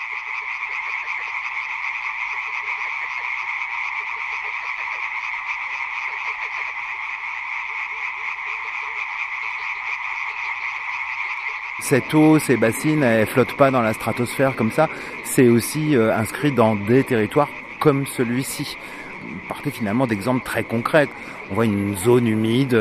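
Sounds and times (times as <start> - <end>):
dense chorus of frogs croaking in daytime: 0.0 - 22.7
speech: 11.9 - 22.7.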